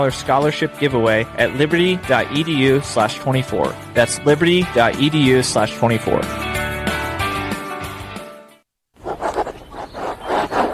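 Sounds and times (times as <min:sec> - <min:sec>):
speech: 0:00.0 - 0:06.5
short musical passage: 0:00.0 - 0:08.6
fountain pen scratching across linen paper: 0:09.0 - 0:10.7.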